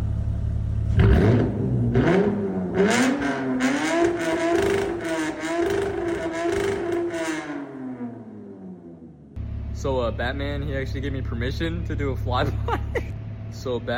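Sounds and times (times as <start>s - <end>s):
car engine revving up to redline: 0.0s - 9.6s
speech: 10.2s - 13.9s
laughter: 12.2s - 13.2s.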